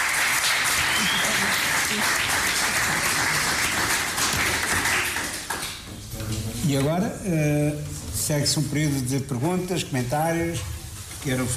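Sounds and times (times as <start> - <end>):
audience applause for a professor: 0.0 - 5.9
speech: 6.7 - 11.5.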